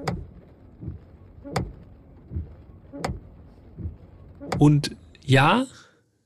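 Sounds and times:
windscreen wiper knocking against the window frame after driving in rain: 0.0s - 4.6s
speech: 4.6s - 5.8s.

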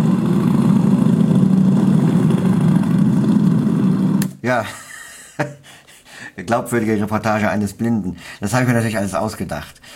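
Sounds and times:
motorcycle engines starting and riding off in a convoy: 0.0s - 4.2s
speech: 4.5s - 4.8s, 5.4s - 5.8s, 6.4s - 9.9s.

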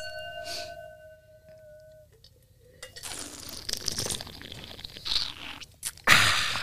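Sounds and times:
faint ringing tone: 0.0s - 2.1s
wine being slurped during tasting: 3.0s - 6.0s.

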